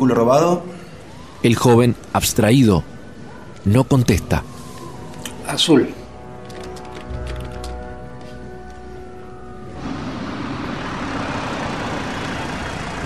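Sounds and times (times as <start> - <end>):
speech: 0.0 - 0.8, 1.4 - 2.9, 3.6 - 4.5, 5.5 - 6.0
road and tire noise of a car driving home: 0.0 - 13.0
car engine humming: 6.3 - 13.0.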